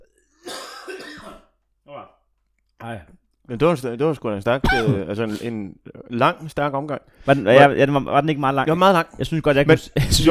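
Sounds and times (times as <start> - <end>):
coughing and throat clearing: 0.0 - 2.2, 4.6 - 5.6
speech: 2.8 - 10.3.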